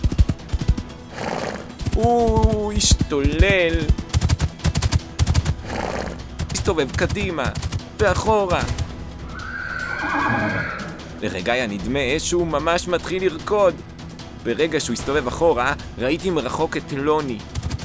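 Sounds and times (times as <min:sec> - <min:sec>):
horse hoof clop: 0:00.0 - 0:10.8, 0:17.5 - 0:17.8
horse neighing: 0:01.1 - 0:01.8, 0:05.6 - 0:06.3, 0:09.2 - 0:11.2
speech: 0:02.0 - 0:04.0, 0:06.6 - 0:08.8, 0:10.4 - 0:17.5.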